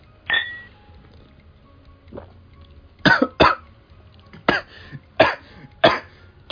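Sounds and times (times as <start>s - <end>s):
man coughing and sputtering after a drink went down his windpipe: 3.0s - 3.6s, 4.4s - 6.5s.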